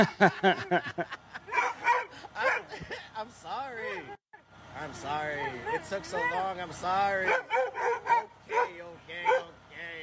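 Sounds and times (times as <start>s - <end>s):
speech: 0.0s - 1.2s, 2.4s - 4.2s, 4.8s - 9.4s
laughter: 0.0s - 3.2s
Doberman barking and yipping: 1.5s - 2.8s, 5.3s - 6.6s, 7.2s - 9.6s.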